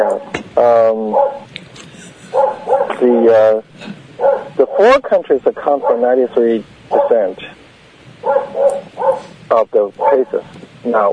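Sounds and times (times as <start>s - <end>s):
dog barking outside: 0.0s - 0.3s, 1.0s - 1.5s, 2.3s - 3.0s, 4.2s - 4.9s, 5.7s - 6.2s, 6.9s - 7.3s, 8.2s - 9.3s, 10.0s - 10.5s
speech: 0.0s - 1.6s, 3.0s - 4.0s, 4.8s - 7.6s, 8.2s - 11.1s.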